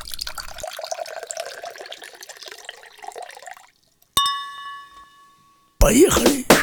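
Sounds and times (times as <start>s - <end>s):
drink being poured into a glass: 0.0s - 4.1s
bright clink of glass: 0.3s - 5.8s
speech: 5.9s - 6.5s.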